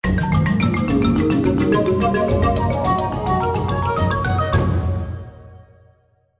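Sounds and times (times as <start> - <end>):
musical spin effect: 0.3 - 4.8.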